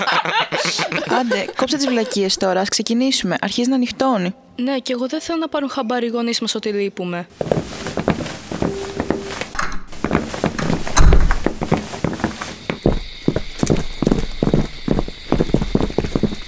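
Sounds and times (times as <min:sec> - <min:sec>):
laughter: 0:00.0 - 0:02.8
speech: 0:00.8 - 0:08.1
footsteps walking along a hard road surface: 0:07.4 - 0:16.4.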